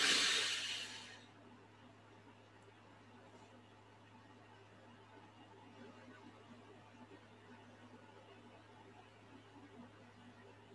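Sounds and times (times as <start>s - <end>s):
very deep breath inhaled: 0.0s - 1.2s.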